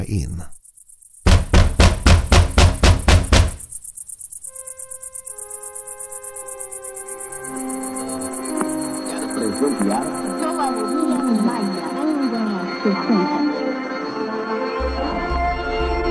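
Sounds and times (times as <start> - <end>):
crickets chirping: 0.0 - 16.0
speech: 0.1 - 0.5, 12.8 - 13.4
heavy rapid knocking on a door: 1.3 - 3.7
soft sustained tones: 4.5 - 14.9.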